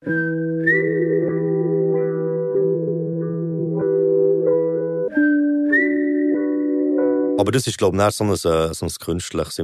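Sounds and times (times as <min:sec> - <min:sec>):
whistled melody over a steady musical beat: 0:00.0 - 0:07.4
speech: 0:07.4 - 0:09.6.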